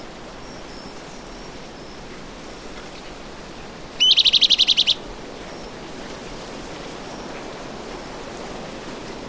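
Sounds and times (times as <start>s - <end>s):
bran-colored flycatcher of subspecies auriceps calling: 4.0s - 5.0s.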